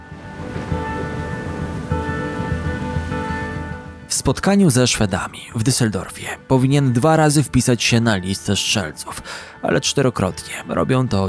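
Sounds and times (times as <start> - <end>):
low rumble of distant thunder: 0.0 - 4.0
heavy rain: 0.0 - 6.2
speech: 4.2 - 11.2.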